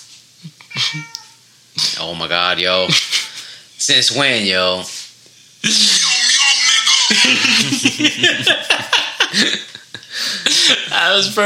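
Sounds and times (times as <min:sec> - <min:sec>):
speech: 0:00.4 - 0:01.2, 0:02.0 - 0:03.2, 0:03.8 - 0:05.0, 0:05.6 - 0:06.0, 0:07.2 - 0:11.4
cat meowing: 0:00.6 - 0:01.4
laughter: 0:02.8 - 0:03.4, 0:05.6 - 0:11.0.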